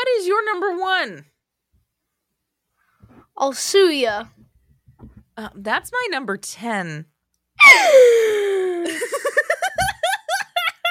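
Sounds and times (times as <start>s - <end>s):
speech: 0.0s - 1.3s, 3.4s - 4.4s, 5.4s - 9.8s
dramatic gasp of disagreement: 7.6s - 8.8s.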